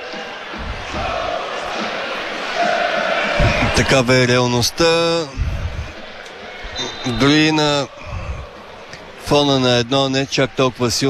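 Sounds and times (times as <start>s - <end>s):
football fans whistling in disapproval from the stands: 0.0s - 4.0s, 5.6s - 9.1s
dense steady crowd roar: 0.0s - 11.0s
speech: 3.8s - 5.5s, 7.1s - 8.0s, 9.3s - 11.0s.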